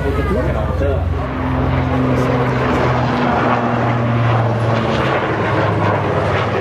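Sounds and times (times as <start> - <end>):
Swiss Air Force Super Puma military helicopter engine and rotor roaring overhead: 0.0 - 6.5.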